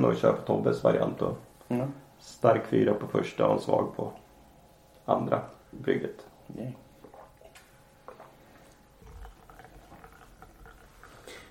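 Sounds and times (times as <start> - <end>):
speech: 0.0 - 4.2, 5.1 - 6.8
Bai Mu Dan white tea being poured into cups: 7.0 - 11.4.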